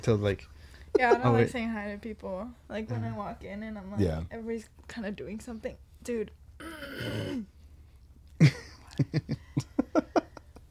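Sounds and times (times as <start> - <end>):
speech: 0.0 - 7.6, 8.4 - 9.4
person coughing: 6.6 - 7.5.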